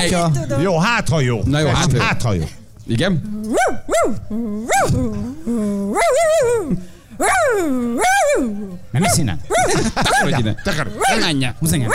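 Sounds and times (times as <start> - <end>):
speech: 0.0 - 11.9
person imitating a small dog with yips and yowls: 3.3 - 10.3
laughter: 9.2 - 11.4.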